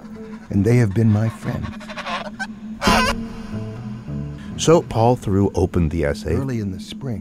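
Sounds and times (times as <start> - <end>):
gray goose honking: 0.0 - 4.6
speech: 0.5 - 1.9, 4.6 - 7.1.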